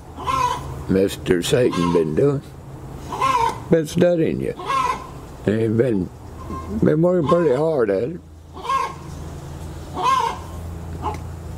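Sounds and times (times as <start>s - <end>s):
chicken clucking: 0.2s - 0.8s, 1.6s - 2.2s, 3.1s - 3.7s, 4.6s - 5.2s, 6.4s - 7.8s, 8.6s - 9.2s, 9.9s - 11.2s
speech: 0.9s - 2.6s, 3.7s - 4.7s, 5.4s - 8.3s.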